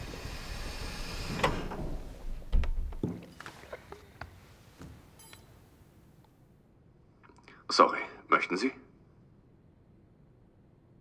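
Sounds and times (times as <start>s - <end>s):
door sliding and thumping open with a heavy low thud: 0.0s - 3.3s
speech: 7.8s - 8.8s.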